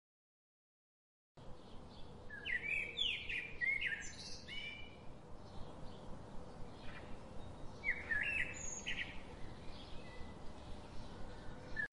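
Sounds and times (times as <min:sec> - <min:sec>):
birds chirping and trilling: 0:01.4 - 0:11.9.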